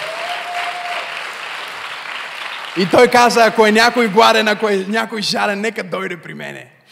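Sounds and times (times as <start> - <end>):
church service audience applause: 0.0 - 3.6
speech: 2.8 - 6.8.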